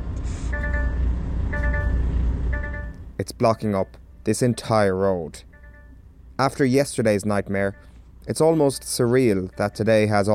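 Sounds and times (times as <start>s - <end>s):
heavy car-carrying truck engine rumbling: 0.0s - 10.3s
electronic truck reversing beeps: 0.3s - 4.8s, 7.6s - 8.0s, 8.7s - 10.3s
speech: 3.2s - 5.5s, 6.4s - 10.3s.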